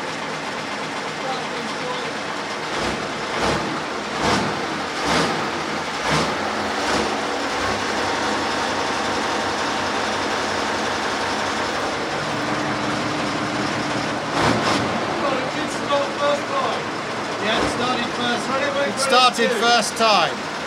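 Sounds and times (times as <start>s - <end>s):
Russian tank engine rumbling while being driven: 0.0s - 20.6s
people talking: 1.1s - 2.2s, 15.1s - 20.5s.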